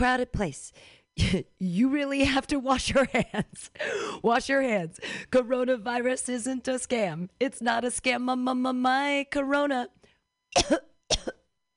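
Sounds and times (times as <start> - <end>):
speech: 0.0 - 11.4
harsh coughs: 10.5 - 11.5.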